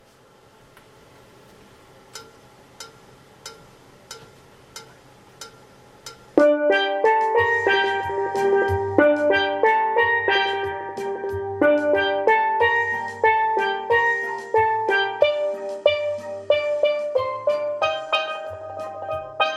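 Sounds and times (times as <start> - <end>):
musical accompaniment: 6.4 - 19.5
tenor melody: 6.4 - 19.5.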